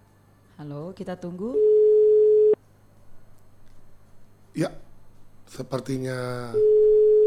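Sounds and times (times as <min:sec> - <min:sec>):
faint low hum: 0:00.0 - 0:07.2
speech: 0:00.6 - 0:01.8, 0:04.6 - 0:04.8, 0:05.5 - 0:06.8
telephone call tone from an unanswered call: 0:01.6 - 0:02.6, 0:06.6 - 0:07.2.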